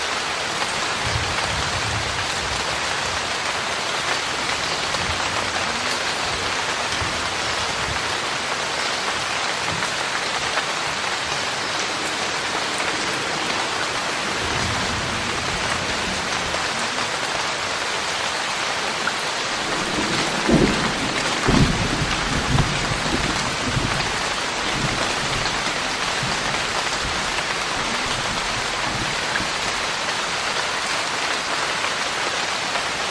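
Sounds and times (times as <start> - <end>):
thunderstorm rain hiss: 0.0 - 33.0.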